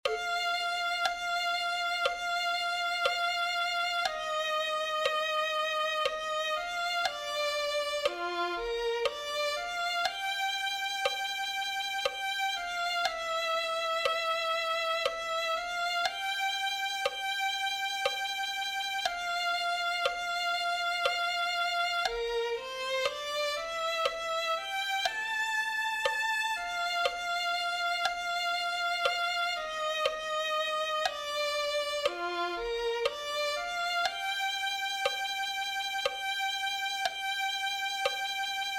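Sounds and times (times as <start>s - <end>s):
violin: 0.0s - 38.7s.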